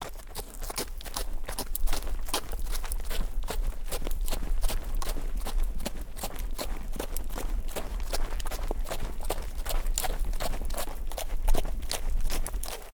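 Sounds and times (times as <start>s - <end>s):
horse walking: 0.0s - 12.9s.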